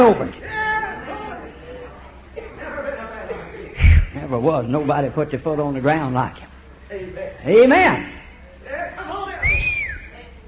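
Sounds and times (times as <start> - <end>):
speech: 0.1 - 0.5, 4.3 - 9.1
person whistling a swooping note: 9.4 - 10.1.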